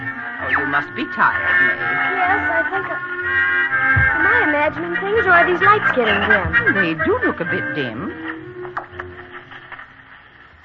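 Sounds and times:
radio static hissing with crackles and pops: 0.1s - 10.6s
speech: 0.7s - 8.3s.

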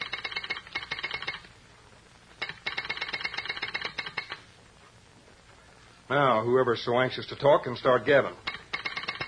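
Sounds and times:
rapid rattling electric incoming call signal buzz at a station: 0.0s - 1.6s, 2.3s - 4.6s, 7.4s - 9.2s
speech: 6.1s - 8.4s.

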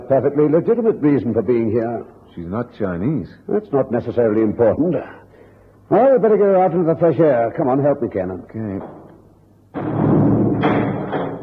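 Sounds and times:
speech: 0.1s - 5.2s, 5.9s - 9.0s
dragon's mouth temple door mechanism slamming shut: 9.7s - 11.4s.

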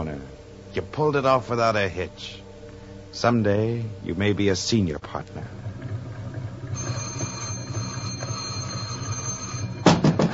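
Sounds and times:
speech: 0.0s - 2.4s, 3.1s - 5.6s
electric bell ringing with a rattling buzzing tone: 6.7s - 10.3s
loud sharp knocks or thumps: 9.8s - 10.3s.

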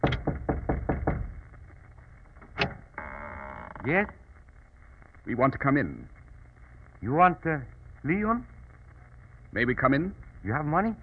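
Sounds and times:
knocking on a wooden door: 0.0s - 1.4s
speech: 3.8s - 4.2s, 5.3s - 6.2s, 7.0s - 8.5s, 9.5s - 11.0s.

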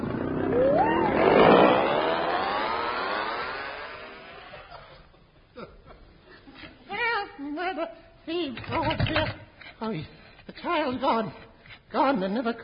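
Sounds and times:
outboard motor revving: 0.0s - 4.5s
speech: 8.6s - 12.6s.

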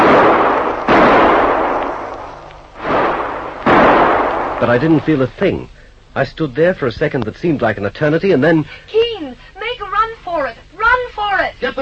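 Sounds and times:
gunshots fired at the edge of a roadside ditch: 0.0s - 5.2s
speech: 4.6s - 11.8s.

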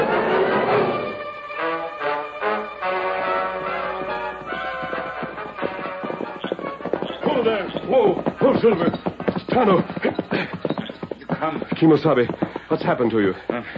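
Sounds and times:
musical backdrop: 0.0s - 8.2s
horse hooves clopping: 2.5s - 13.7s
speech: 8.6s - 9.0s, 9.6s - 10.3s, 11.4s - 13.7s.

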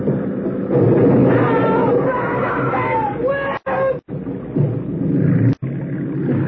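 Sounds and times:
motorboat engine roaring while ramming another boat: 0.0s - 6.4s
motorboat ramming into another boat carrying people: 0.0s - 6.4s
high cries of people including women and children: 0.7s - 4.2s.

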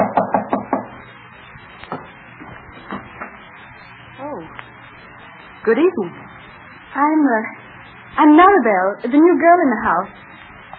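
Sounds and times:
knocking on a door of a rented room in a boarding house in Geneva: 0.0s - 0.9s
speech: 5.6s - 6.3s, 7.0s - 7.6s, 8.2s - 10.2s.

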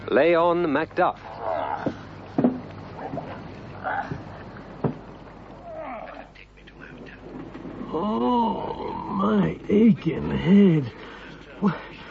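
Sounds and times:
speech: 0.1s - 1.5s, 7.9s - 11.0s, 11.6s - 11.8s
wooden boat creaking and groaning on the water: 1.6s - 5.8s, 7.1s - 8.7s
sharp knocks against the boat hull: 1.8s - 3.3s, 4.1s - 5.1s.

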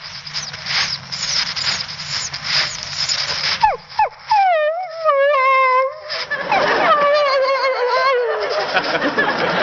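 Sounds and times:
burst of hissy noise: 0.0s - 4.0s
person imitating a dog whining to be taken along: 3.6s - 8.6s
laughter: 6.0s - 9.6s.

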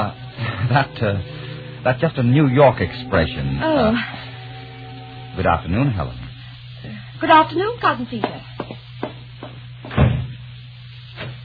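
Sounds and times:
steady low hum: 0.0s - 11.4s
speech: 0.7s - 4.3s, 5.4s - 6.2s, 6.8s - 8.8s
door banging shut: 9.9s - 10.3s.

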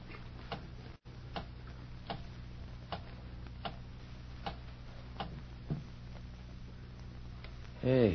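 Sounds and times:
low constant hum: 0.0s - 8.1s
clock ticking: 1.3s - 1.5s, 2.9s - 3.8s, 4.4s - 5.4s
speech: 7.8s - 8.1s.

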